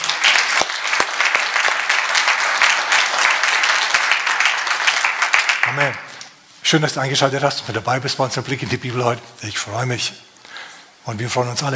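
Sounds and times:
audience applause: 0.0 - 6.1
speech: 5.8 - 6.0, 6.7 - 10.3, 11.1 - 11.7.

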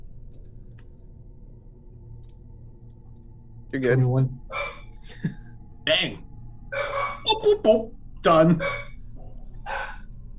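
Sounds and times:
low hum: 0.0 - 10.3
speech: 3.7 - 4.5, 5.2 - 6.3, 7.4 - 8.8
dog barking: 4.5 - 4.8, 6.7 - 7.3, 8.6 - 8.9, 9.7 - 10.0.

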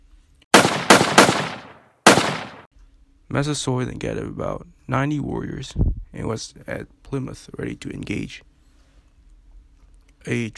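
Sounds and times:
cannon shots: 0.5 - 2.7
gunfire: 0.5 - 2.7
speech: 3.3 - 8.5, 10.2 - 10.5.

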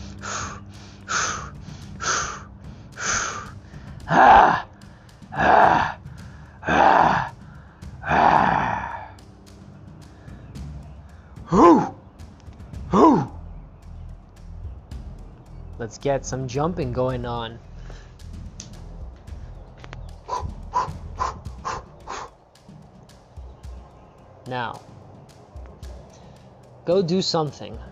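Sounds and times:
deep heavy breathing exercise: 0.0 - 9.2, 10.0 - 12.0, 17.6 - 18.6, 19.3 - 22.4, 26.1 - 26.7
speech: 4.1 - 4.6, 15.9 - 17.7, 24.5 - 24.9, 26.9 - 27.9.

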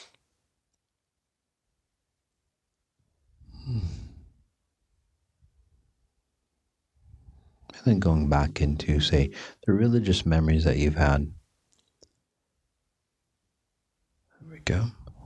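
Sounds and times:
person breathing in deeply: 3.5 - 4.4, 9.3 - 9.6
speech: 7.8 - 11.4, 14.6 - 15.0.

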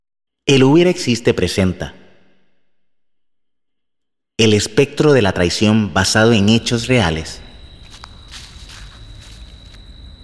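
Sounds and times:
speech: 0.5 - 2.0, 4.4 - 7.4
footsteps crunching at a walking pace: 7.5 - 10.2.

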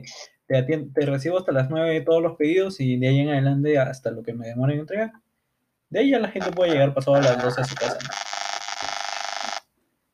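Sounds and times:
speech: 0.0 - 5.2, 5.9 - 8.3
loud electronic mobile phone ring or alarm tone: 6.4 - 9.7.

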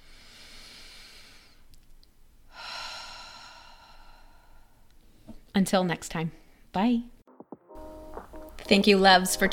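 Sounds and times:
deep breath in through the nose and airy exhale: 0.0 - 1.7, 2.5 - 5.3
speech: 5.6 - 7.2, 8.7 - 9.5.

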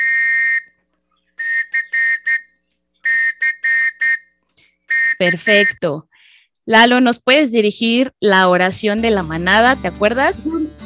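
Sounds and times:
shrill whistle blasts calling a scout pack to formation: 0.0 - 0.8, 1.4 - 5.9
speech: 5.2 - 6.1, 6.7 - 10.8.

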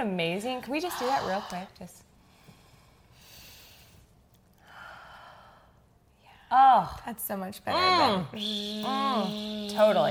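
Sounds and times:
speech: 0.0 - 2.0, 6.5 - 10.1
steady low noise: 0.0 - 10.1
deep breathing: 0.7 - 6.5.

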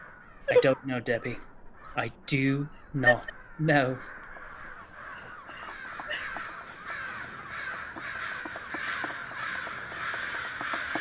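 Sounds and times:
dense flock of attacking crows cawing: 0.0 - 10.9
speech: 0.5 - 4.2.

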